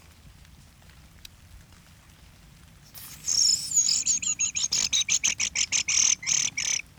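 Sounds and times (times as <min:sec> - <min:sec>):
thrush calling with high bright chirping notes: 0:02.9 - 0:06.9.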